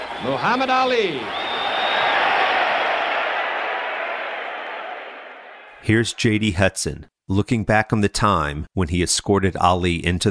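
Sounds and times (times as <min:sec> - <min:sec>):
boxing arena crowd roaring and yelling: 0:00.0 - 0:06.1
speech: 0:00.2 - 0:01.4, 0:05.8 - 0:10.2.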